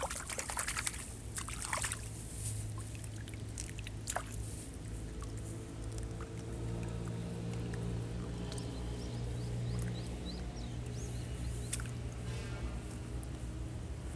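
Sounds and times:
rice seedlings pulled from a flooded nursery bed: 0.0 - 13.7
steady low engine hum: 0.0 - 14.1
wet splashing and rustling: 0.0 - 14.1
small bird chirps: 8.4 - 12.0.

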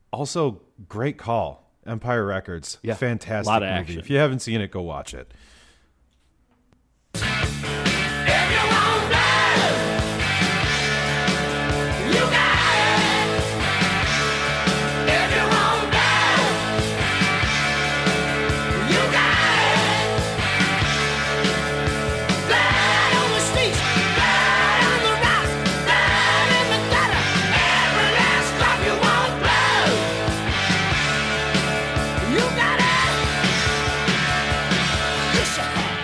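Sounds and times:
speech: 0.1 - 5.6
loud rock song with screamed vocals, heavy drums and distorted guitars: 7.2 - 36.0.

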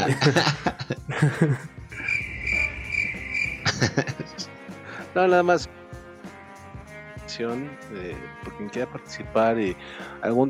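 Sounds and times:
speech: 0.0 - 1.7, 5.2 - 5.8, 7.4 - 10.4
people laughing and chuckling: 0.0 - 2.2, 3.6 - 4.4
cricket chirping sound effect: 2.0 - 3.8.

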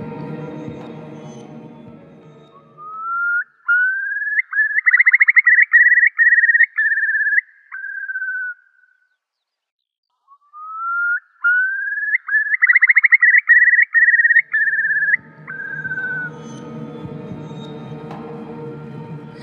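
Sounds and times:
curlew calling: 2.3 - 9.2, 10.2 - 18.2.

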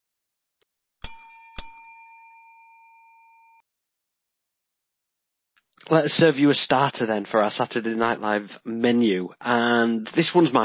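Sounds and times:
bell dings: 1.0 - 3.6
speech: 5.9 - 10.6.

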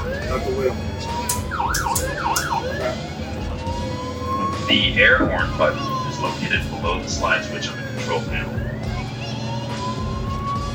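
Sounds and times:
emergency vehicle siren warbling wail: 0.0 - 10.7
speech: 0.4 - 1.8, 4.7 - 8.6.

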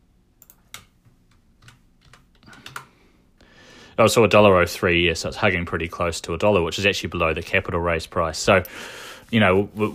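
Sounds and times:
keys tapped on a computer keyboard: 0.4 - 2.9
speech: 4.0 - 9.9.

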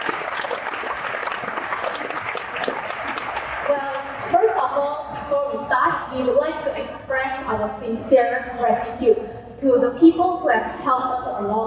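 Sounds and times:
crowd applauding in a room: 0.0 - 4.4
speech: 6.1 - 11.6.

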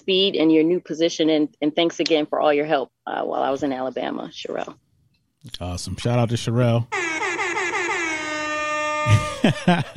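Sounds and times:
speech: 0.0 - 4.8, 5.4 - 7.0, 9.4 - 9.9
DJ air horn sound effect: 6.9 - 9.3
laughter: 9.1 - 9.9.

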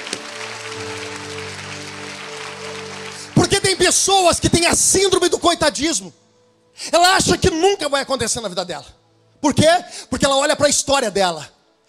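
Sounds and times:
audience clapping energetically: 0.0 - 4.9
speech: 3.4 - 6.2, 6.8 - 11.8.

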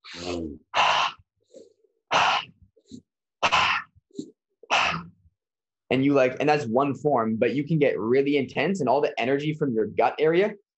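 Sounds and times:
forceful breathing in intense breath work: 0.0 - 4.4
softer breathy puffs and gasps: 0.0 - 5.2
speech: 0.1 - 0.8, 5.9 - 10.6.

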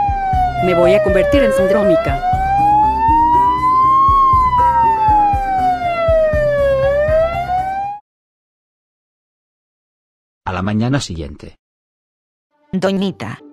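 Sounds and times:
ambulance siren wailing: 0.0 - 8.0
speech: 0.6 - 2.4, 10.6 - 11.6, 12.7 - 13.4.

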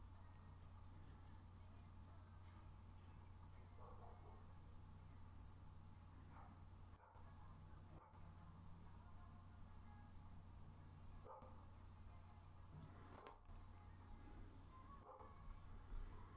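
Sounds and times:
steady low hum: 0.0 - 16.3
dog barking outside, as if through a wall: 3.7 - 4.5, 6.2 - 8.3, 11.2 - 11.7, 15.0 - 15.4.

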